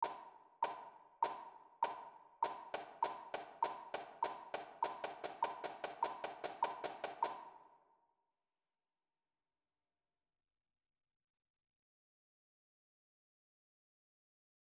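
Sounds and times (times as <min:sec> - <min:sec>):
drumline marching percussion: 0:00.0 - 0:07.4
metronome clicking: 0:00.0 - 0:07.4.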